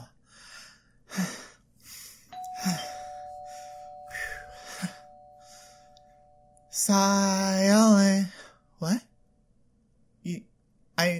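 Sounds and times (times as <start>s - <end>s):
electronic doorbell chime rung by holiday carolers: 2.3s - 8.1s
speech: 6.9s - 7.2s.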